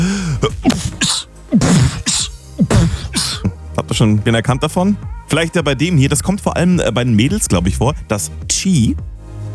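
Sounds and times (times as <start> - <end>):
beatbox-style rhythmic sneezes with breathy hisses and clicks: 0.0 - 4.1
speech: 4.0 - 9.1.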